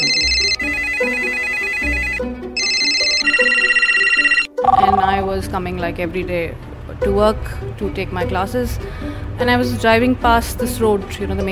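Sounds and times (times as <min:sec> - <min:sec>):
phone ringtone with bright repeating electronic melody: 0:00.0 - 0:05.2
speech: 0:05.1 - 0:11.5.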